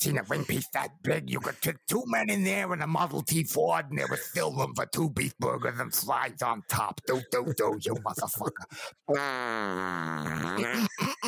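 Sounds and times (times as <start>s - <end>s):
speech: 0.0s - 11.2s
laughter: 3.9s - 4.7s, 7.0s - 9.0s, 10.6s - 11.2s
fart noise blown with the lips: 9.1s - 10.9s.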